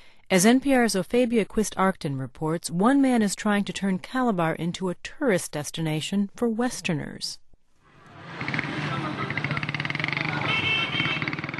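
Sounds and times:
speech: 0.3s - 7.4s
motorbike taxi engines buzzing and revving in rush-hour traffic in Calabar, Nigeria: 7.9s - 11.5s.

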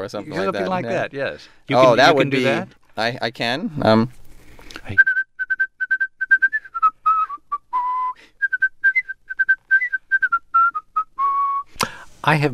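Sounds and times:
speech: 0.0s - 4.2s, 4.8s - 5.1s, 12.2s - 12.5s
person whistling a lively melody: 5.0s - 11.7s.

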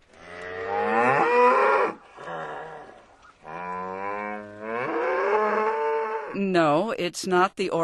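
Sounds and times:
cows mooing in a dairy pasture: 0.2s - 6.4s
speech: 6.5s - 7.8s.

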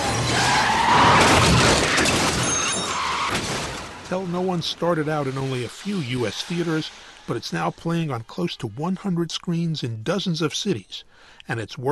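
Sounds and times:
smashing crash impact: 0.0s - 7.8s
car chase tires screeching and skidding: 0.0s - 8.5s
roaring car-chase noise in a thriller film: 0.0s - 9.0s
speech: 4.1s - 11.9s.

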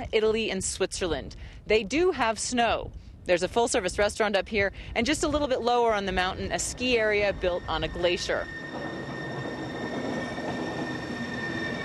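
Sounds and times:
speech: 0.0s - 9.0s
cogwheel train rumbling on rails on a mountain: 5.1s - 11.8s
high metallic whines of a cogwheel train: 6.0s - 11.8s.

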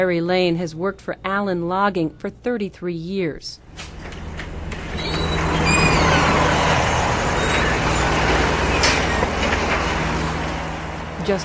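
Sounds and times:
speech: 0.0s - 4.0s, 11.2s - 11.4s
heavy diesel crane machinery rumbling: 3.7s - 11.4s.

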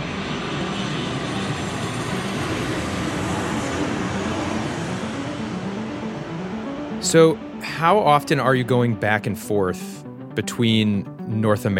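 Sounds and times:
airplane engines roaring in flight: 0.0s - 11.4s
speech: 7.0s - 11.7s.

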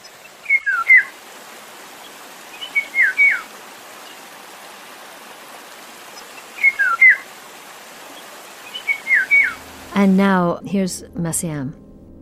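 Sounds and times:
Eurasian golden oriole giving fluting whistled phrases: 0.4s - 1.1s, 2.6s - 3.5s, 6.6s - 7.2s, 8.7s - 9.6s
speech: 10.0s - 11.8s.

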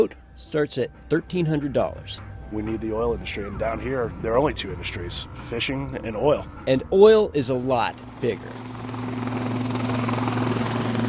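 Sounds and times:
speech: 0.0s - 9.1s
large helicopters carrying oil workers over the Delta: 3.5s - 11.0s.

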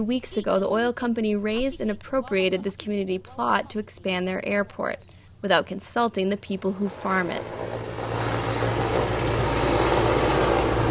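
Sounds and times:
speech: 0.0s - 7.9s
large helicopter rising and flying overhead: 6.8s - 10.8s.

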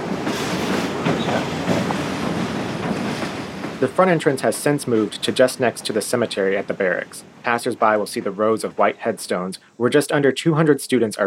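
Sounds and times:
faint rhythmic clacks from the rails: 0.0s - 9.6s
train rumbling past on the tracks: 0.0s - 9.6s
speech: 3.8s - 11.2s.

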